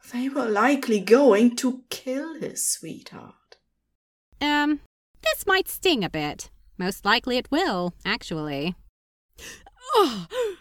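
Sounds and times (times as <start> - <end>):
speech: 0.1 - 3.4, 4.4 - 8.8, 9.4 - 10.6
person gasping in pain: 9.4 - 10.6.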